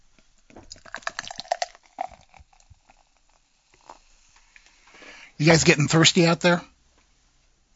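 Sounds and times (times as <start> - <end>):
all-organic beer pouring from a can: 0.6 - 4.2
poured beer fizzing and hissing: 0.6 - 5.7
speech: 5.4 - 6.7.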